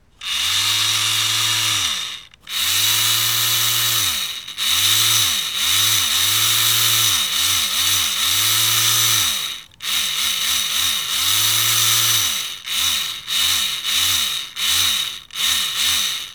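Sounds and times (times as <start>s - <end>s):
small servo motor: 0.1s - 16.3s.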